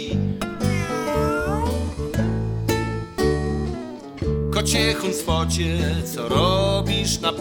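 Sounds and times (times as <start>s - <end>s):
loud music with bass, chords and regular beats: 0.0s - 7.4s
meow-like cries: 0.6s - 2.0s
speech: 4.6s - 7.4s.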